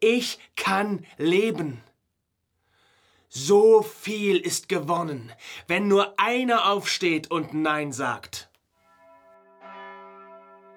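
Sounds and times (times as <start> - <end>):
speech: 0.0 - 1.9, 3.3 - 8.5
church bell ringing: 8.8 - 10.7.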